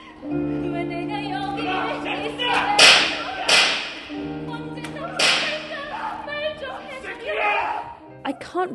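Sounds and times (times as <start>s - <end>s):
person singing: 0.0s - 7.5s
whip lashes striking prisoners on stage: 2.8s - 4.1s, 5.2s - 5.7s.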